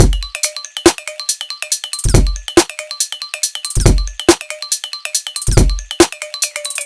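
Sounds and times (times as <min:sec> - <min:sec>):
swing drums: 0:00.0 - 0:01.1, 0:02.0 - 0:02.8, 0:03.7 - 0:04.6, 0:05.2 - 0:06.8.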